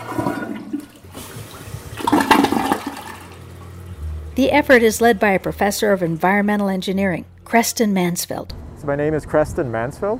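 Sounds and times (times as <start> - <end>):
dorm toilet flushing: 0.0 - 6.8
speech: 4.4 - 10.1.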